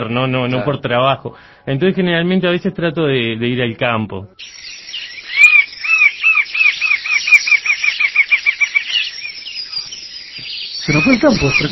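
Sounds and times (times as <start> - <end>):
speech: 0.0 - 4.8, 10.9 - 11.6
flock of birds calling in shrill rapidly repeated chirps: 4.4 - 11.6.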